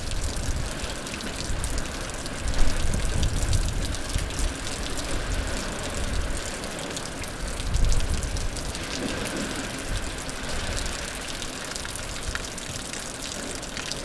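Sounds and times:
water dripping and splashing inside an ocean cave: 0.0s - 14.0s.

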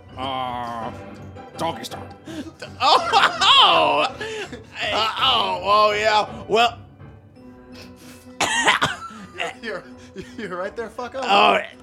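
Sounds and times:
speech: 0.2s - 6.8s, 9.6s - 11.8s
laughter: 2.3s - 5.6s, 8.4s - 10.8s
person clearing their throat: 8.4s - 9.6s
person coughing: 8.4s - 9.6s.

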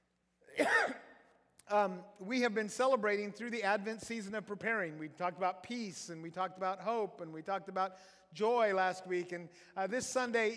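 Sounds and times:
person coughing during a church service: 0.6s - 1.1s
speech: 1.7s - 10.5s.

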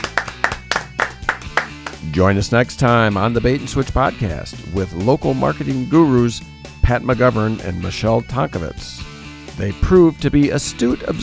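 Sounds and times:
hand claps from a few people: 0.0s - 2.1s
speech: 2.1s - 11.2s.

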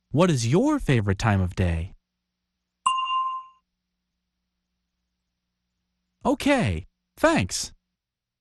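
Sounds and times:
speech: 0.1s - 2.0s, 6.2s - 7.8s
single clear bell ding: 2.9s - 3.6s.

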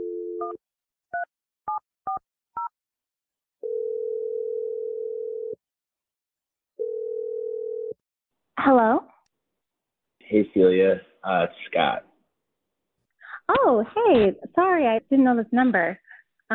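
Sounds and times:
telephone dial tone: 3.6s - 5.6s, 6.8s - 7.9s
speech: 8.6s - 9.1s, 10.3s - 12.1s, 13.6s - 16.5s.

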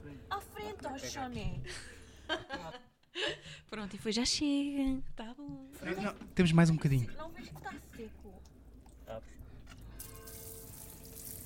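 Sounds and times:
speech: 0.9s - 2.9s, 3.7s - 8.2s
cold tap water running to rinse hair: 10.0s - 11.4s.

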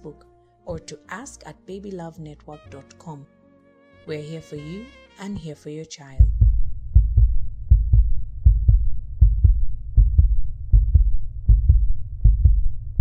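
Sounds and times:
speech: 0.0s - 3.4s, 4.0s - 6.4s
baby's heartbeat: 6.2s - 13.0s.

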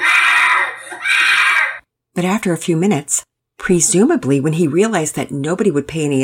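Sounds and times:
boy screaming: 0.0s - 1.8s
speech: 2.2s - 6.2s.

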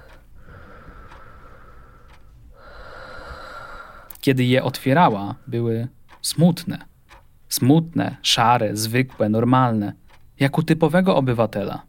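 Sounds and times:
woman taking slow heavy deep breaths: 0.0s - 4.2s
speech: 4.2s - 6.9s, 7.5s - 11.8s.

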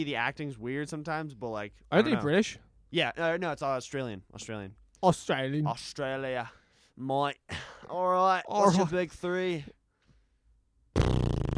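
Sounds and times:
speech: 0.0s - 9.8s
buzzing fart-like raspberry made with the lips: 11.0s - 11.5s.

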